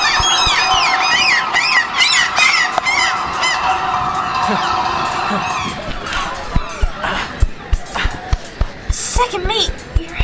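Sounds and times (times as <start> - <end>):
geese wings flapping and thumping: 0.0 - 2.9, 5.7 - 10.2
flock of attacking geese honking: 0.0 - 7.4
laughter: 0.0 - 10.2
speech: 4.5 - 4.7.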